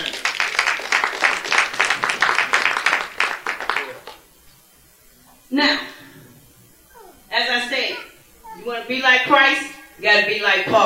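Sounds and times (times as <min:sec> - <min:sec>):
crowd hand clapping applause: 0:00.0 - 0:04.3
speech: 0:05.6 - 0:05.9, 0:08.9 - 0:10.8.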